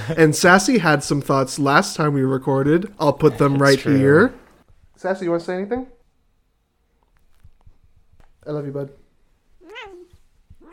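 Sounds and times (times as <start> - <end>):
speech: 0.1 - 4.4, 5.0 - 6.0, 8.4 - 9.0
cat meowing: 9.6 - 10.7.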